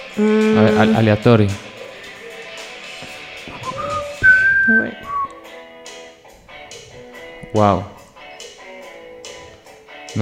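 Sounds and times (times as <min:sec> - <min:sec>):
speech: 0:00.2 - 0:01.6, 0:07.6 - 0:08.0
person whistling a short song melody for a guessing game: 0:03.6 - 0:05.5.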